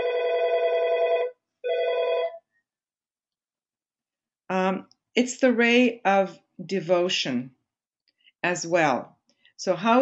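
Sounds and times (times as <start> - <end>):
loud electronic telephone-style ringing: 0.0 - 2.5
speech: 5.2 - 7.6, 8.4 - 10.0.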